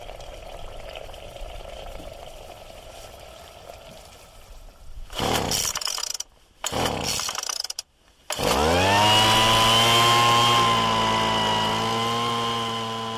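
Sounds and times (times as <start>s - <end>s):
petrol leaf blower two-stroke engine running as insect vacuum: 8.3s - 13.1s.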